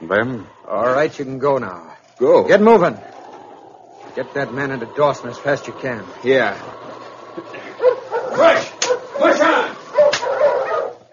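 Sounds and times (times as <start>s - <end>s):
speech: 0.1s - 3.1s, 4.2s - 6.8s
sled dogs barking and yelping excitedly: 2.5s - 11.1s
whip cracks over a sled dog team: 10.1s - 10.4s.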